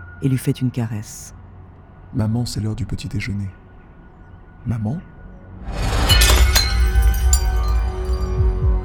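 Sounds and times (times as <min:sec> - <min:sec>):
speech: 0:00.2 - 0:01.4, 0:02.1 - 0:03.6, 0:04.6 - 0:05.8
tray crashing down: 0:05.7 - 0:08.4
glass and crockery dishes shattering: 0:05.8 - 0:08.4
broken pieces clinking and rattling: 0:05.8 - 0:08.5.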